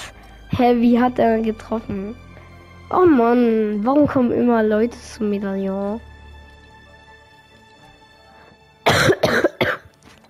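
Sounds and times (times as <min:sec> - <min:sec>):
speech: 0:00.5 - 0:02.3, 0:02.9 - 0:06.1
loud harsh coughs: 0:08.8 - 0:09.9.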